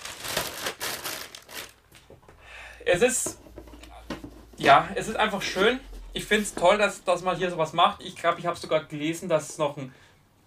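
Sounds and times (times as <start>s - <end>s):
original plastic bag of a packaged item crinkling: 0.0s - 2.1s
speech: 2.9s - 3.4s, 4.6s - 10.1s.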